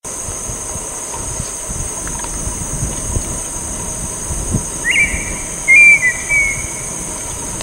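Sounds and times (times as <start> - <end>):
high insect drone: 0.0 - 7.6
low background rumble: 0.2 - 7.6
wild adult red-winged tinamou whistles in San Miguel, Corrientes, Argentina: 4.8 - 7.0.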